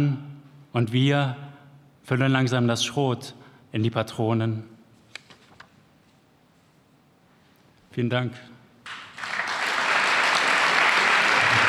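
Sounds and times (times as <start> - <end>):
speech: 0.0 - 1.4, 2.0 - 4.7, 8.0 - 8.5
applause from a sizeable audience: 8.9 - 11.6.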